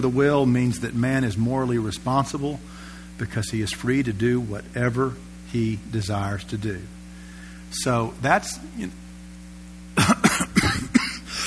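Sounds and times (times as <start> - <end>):
speech: 0.0 - 7.0, 7.7 - 9.0
faint steady hum: 0.0 - 11.4
person clearing throat: 10.0 - 11.4
person coughing: 10.0 - 11.4.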